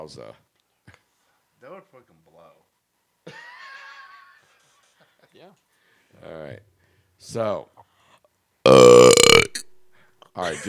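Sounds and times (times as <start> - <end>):
speech: 0.0 - 0.5, 1.6 - 2.7, 5.3 - 7.9, 8.7 - 9.5, 10.4 - 10.6
loud drawn-out burp: 8.7 - 9.9.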